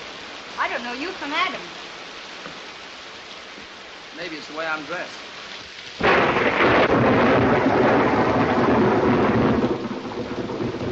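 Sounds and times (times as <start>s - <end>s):
steady rain: 0.0s - 10.9s
speech: 0.7s - 2.6s, 4.2s - 5.3s
loud thunder crack rolling into heavy rumble during a storm: 6.0s - 10.9s.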